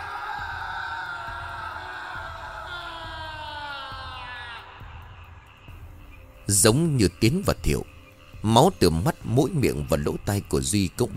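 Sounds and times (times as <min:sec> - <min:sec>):
terrified scream: 0:00.0 - 0:05.7
speech: 0:06.5 - 0:11.1.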